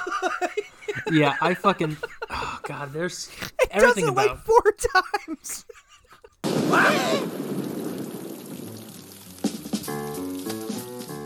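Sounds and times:
laughter: 0.0s - 7.2s
speech: 0.2s - 5.7s, 6.7s - 7.4s
heavy rain pouring: 6.5s - 11.2s
person shouting: 6.6s - 7.4s
music: 9.3s - 11.2s.

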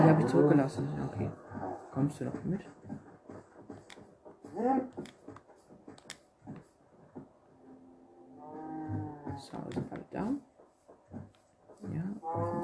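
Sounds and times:
speech: 0.1s - 3.1s, 4.6s - 5.2s, 9.4s - 10.5s, 11.8s - 12.6s
cow mooing in a video game: 8.4s - 9.3s, 12.2s - 12.6s.

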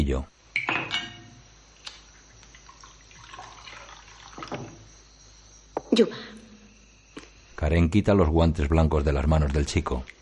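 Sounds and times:
speech: 0.0s - 0.3s, 6.0s - 6.4s, 7.6s - 10.2s
glassy clink of a wine glass: 0.6s - 1.4s
waiter pouring wine into a glass: 2.5s - 4.8s.

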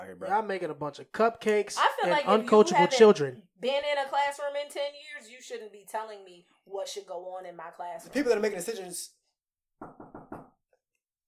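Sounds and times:
speech: 0.1s - 9.2s, 9.8s - 10.2s
quick solid knocks on a door: 9.8s - 10.6s.

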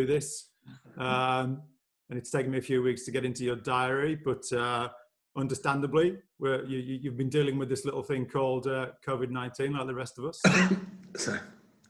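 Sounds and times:
speech: 0.0s - 11.6s
man coughing into his armpit: 10.4s - 11.5s.

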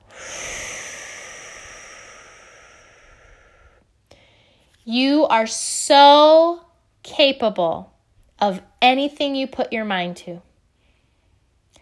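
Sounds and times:
slow breath in through the nose and out through the mouth: 0.0s - 4.8s
speech: 4.9s - 10.5s.

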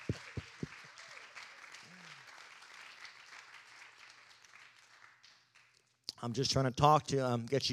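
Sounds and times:
audience clapping for the young people: 0.0s - 6.1s
speech: 6.2s - 7.7s.

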